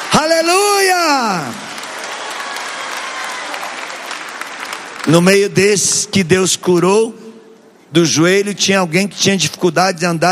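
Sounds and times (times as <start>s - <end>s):
large audience applauding at a church healing service: 0.0s - 5.5s
speech: 0.2s - 1.6s, 5.0s - 7.2s, 7.9s - 10.3s.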